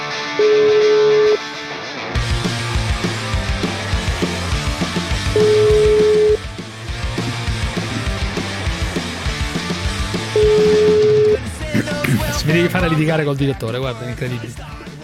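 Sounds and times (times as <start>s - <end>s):
telephone ringing with an electronic tone: 0.4s - 1.4s, 5.3s - 6.4s, 10.4s - 11.4s
rhythmic music: 2.2s - 15.0s
speech: 12.6s - 14.8s.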